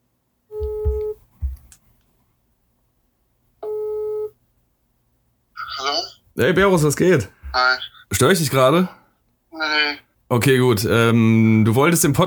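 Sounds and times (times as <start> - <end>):
electronic ringback tones on a phone line: 0.5 - 1.2, 3.6 - 4.3
speech: 6.4 - 9.0, 9.6 - 12.2.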